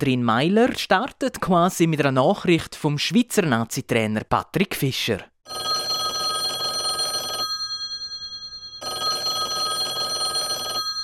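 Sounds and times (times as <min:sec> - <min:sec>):
speech: 0:00.0 - 0:05.7
telephone ringing: 0:05.5 - 0:11.0.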